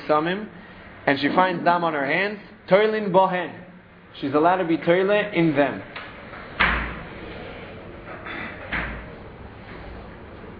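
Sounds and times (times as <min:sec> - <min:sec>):
speech: 0:00.0 - 0:03.6, 0:04.2 - 0:05.9
door banging shut: 0:06.4 - 0:07.2.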